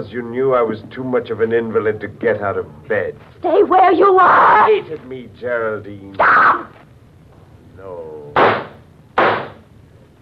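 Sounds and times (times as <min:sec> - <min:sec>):
speech: 0:00.0 - 0:06.8, 0:07.8 - 0:08.3
gunshots: 0:08.4 - 0:09.6.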